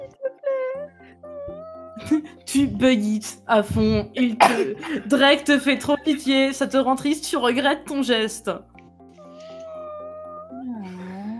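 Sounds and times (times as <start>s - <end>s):
speech: 2.0s - 8.7s
cat meowing in a video game: 9.2s - 10.7s.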